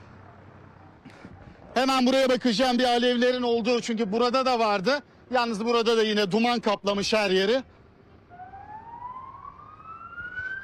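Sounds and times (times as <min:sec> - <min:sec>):
speech: 0:01.1 - 0:07.8
emergency vehicle siren wailing: 0:08.2 - 0:10.6.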